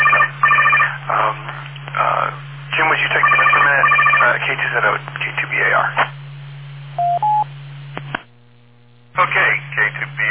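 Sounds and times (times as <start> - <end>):
telephone ringing in warbling electronic tone: 0.0 - 1.0, 3.2 - 4.4, 7.0 - 7.4
steady low hum: 0.0 - 10.2.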